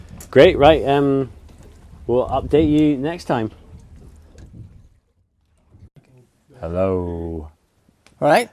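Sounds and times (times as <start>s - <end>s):
ferry or fishing boat engine rumble: 0.0s - 5.9s
water noise: 0.0s - 5.9s
wind: 0.0s - 8.5s
speech: 0.3s - 1.4s, 2.1s - 3.6s, 6.6s - 7.5s, 8.2s - 8.5s.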